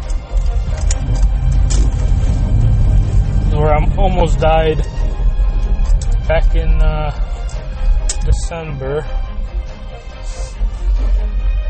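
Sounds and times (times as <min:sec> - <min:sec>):
road noise and hiss: 0:00.0 - 0:08.4
semi truck engine drone merging in traffic: 0:00.0 - 0:11.6
speech: 0:04.2 - 0:05.0, 0:06.3 - 0:07.3, 0:08.2 - 0:09.2.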